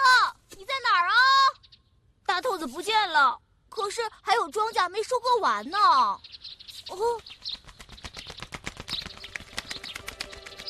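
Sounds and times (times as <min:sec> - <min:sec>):
flock of sparrows chirping: 0:00.0 - 0:10.6
speech: 0:02.6 - 0:06.3, 0:06.9 - 0:07.3
rapid flutter of sparrow wings: 0:06.7 - 0:10.6.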